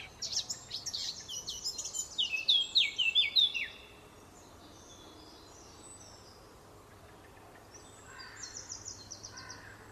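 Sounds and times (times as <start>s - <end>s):
Eurasian blackcap Sylvia atricapilla singing: 0.0s - 3.9s.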